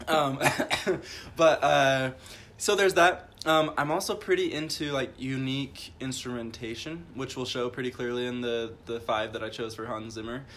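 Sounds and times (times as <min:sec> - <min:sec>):
person clearing throat and coughing with a chip stuck in the throat: 0:00.0 - 0:01.3
speech: 0:00.1 - 0:10.5.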